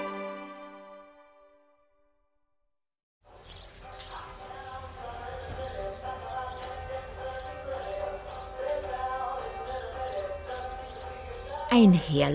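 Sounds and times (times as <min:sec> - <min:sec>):
birds chirping loudly on a sunny day in Bavaria: 0:03.3 - 0:12.3
speech: 0:11.8 - 0:12.3.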